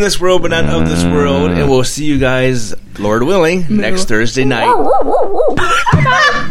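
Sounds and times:
speech: 0:00.0 - 0:06.4
person playfully imitating a dog bark: 0:04.5 - 0:05.6
laughter: 0:04.5 - 0:06.4.

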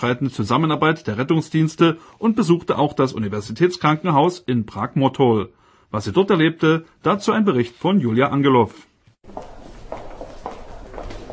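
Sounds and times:
speech: 0:00.0 - 0:09.5
footsteps echoing in a long narrow hospital corridor: 0:09.2 - 0:11.3.

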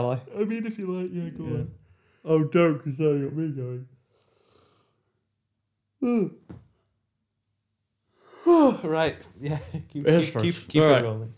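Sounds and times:
speech: 0:00.0 - 0:04.0, 0:06.0 - 0:06.6, 0:08.5 - 0:11.3
person yawning: 0:06.0 - 0:06.4, 0:08.3 - 0:08.8.

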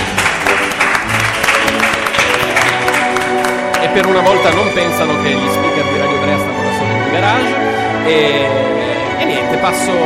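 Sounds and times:
live audience applauding: 0:00.0 - 0:06.7
speech: 0:04.0 - 0:06.4, 0:07.3 - 0:08.8, 0:09.6 - 0:10.0.

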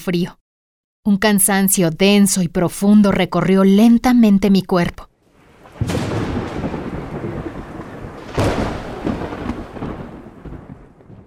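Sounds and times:
speech: 0:00.0 - 0:00.4, 0:01.0 - 0:05.1, 0:05.8 - 0:06.0
deep rumbles of thunder: 0:05.3 - 0:11.2
heavy rain pouring: 0:05.3 - 0:11.2.

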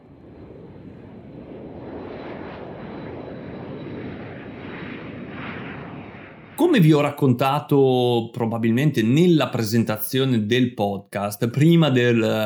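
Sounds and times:
airplane engine roar in flight: 0:00.0 - 0:07.4
speech: 0:06.6 - 0:12.4.

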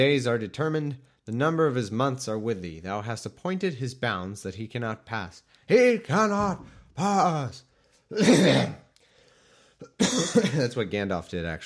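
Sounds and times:
speech: 0:00.0 - 0:08.8, 0:09.8 - 0:11.6
harsh raspy cough: 0:08.1 - 0:08.8, 0:09.8 - 0:10.7.

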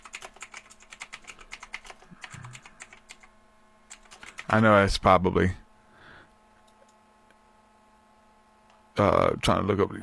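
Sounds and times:
quick typing on a computer keyboard: 0:00.0 - 0:03.3, 0:03.9 - 0:04.6
speech: 0:04.5 - 0:05.6, 0:09.0 - 0:10.0.

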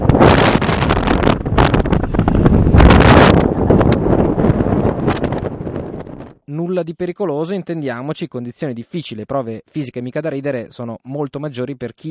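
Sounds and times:
strong mountain wind near blizzard buffeting the microphone: 0:00.0 - 0:06.4
speech: 0:06.8 - 0:12.0.

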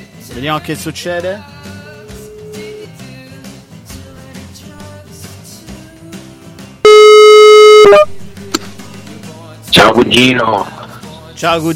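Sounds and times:
speech: 0:00.3 - 0:01.5, 0:07.9 - 0:08.2, 0:09.8 - 0:10.8, 0:11.4 - 0:11.7
WhatsApp call ringing tone as a call is placed abroad: 0:01.8 - 0:03.2, 0:06.9 - 0:08.2.

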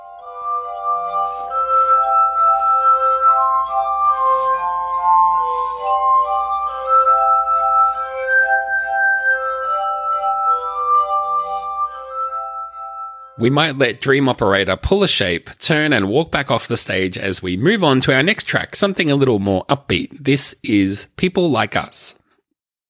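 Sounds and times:
glass-harp tones from rubbed crystal rims: 0:00.0 - 0:13.9
speech: 0:13.4 - 0:22.2.

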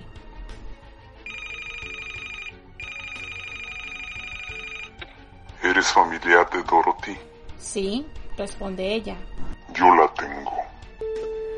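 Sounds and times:
telephone bell ringing: 0:01.3 - 0:05.0
speech: 0:05.8 - 0:10.4.

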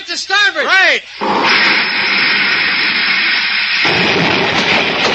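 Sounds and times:
speech: 0:00.2 - 0:01.6
sound effect of an enemy rocket ship's shot hitting a spaceship: 0:01.2 - 0:05.0.

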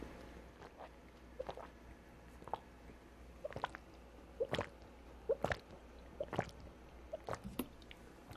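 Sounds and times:
person gulping a drink of water: 0:00.6 - 0:01.8, 0:02.4 - 0:02.7, 0:03.4 - 0:08.3.

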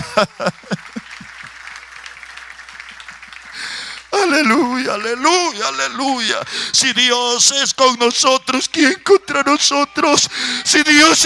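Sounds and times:
congregation applauding: 0:00.0 - 0:06.0
laughter: 0:00.0 - 0:06.5
speech: 0:00.2 - 0:00.8, 0:04.4 - 0:11.2.

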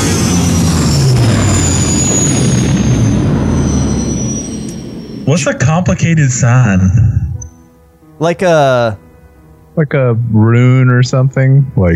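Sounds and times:
giant spacecraft engines roaring and kicking up dust: 0:00.0 - 0:07.5
speech: 0:05.3 - 0:07.2, 0:08.2 - 0:09.0, 0:09.8 - 0:11.9.

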